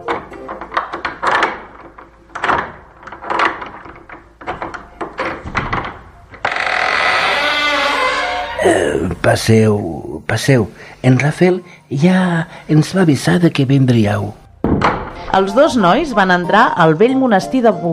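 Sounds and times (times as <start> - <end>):
old monastery door rattling knocks: 0.0 - 6.8, 14.6 - 16.0
old monastery door at Poblet opening with heavy wooden thuds: 0.1 - 7.8, 14.6 - 15.4
speech: 8.6 - 17.9.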